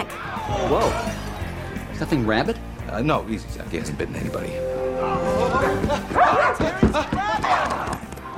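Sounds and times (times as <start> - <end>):
speech: 0.5 - 1.3, 2.0 - 7.5
dog barking and yipping: 6.1 - 6.6.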